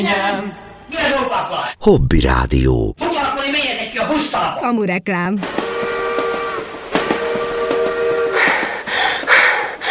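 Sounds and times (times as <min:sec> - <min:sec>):
speech: 0:00.0 - 0:05.6
train steam whistle sound effect: 0:05.5 - 0:08.9.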